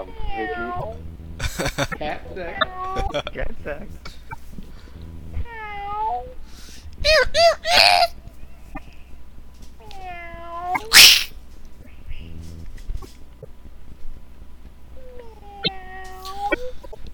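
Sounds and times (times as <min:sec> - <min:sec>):
voices imitating mating cats yowling: 0:00.0 - 0:01.3, 0:02.0 - 0:03.3, 0:05.4 - 0:08.2, 0:09.8 - 0:11.3, 0:15.0 - 0:16.9
speech: 0:00.0 - 0:04.2, 0:07.0 - 0:08.1
laughter: 0:01.3 - 0:04.4
loud sneeze-like burst: 0:10.9 - 0:11.3.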